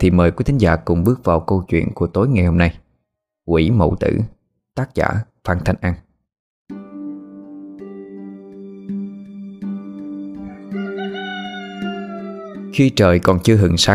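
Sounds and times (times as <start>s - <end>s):
speech: 0.0s - 2.8s, 3.5s - 6.0s, 12.8s - 13.9s
rooster crowing: 10.4s - 12.8s.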